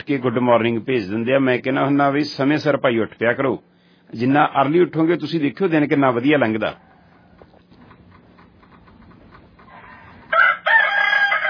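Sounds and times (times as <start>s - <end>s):
speech: 0.0s - 6.9s
rooster crowing: 6.8s - 7.6s, 9.7s - 11.4s.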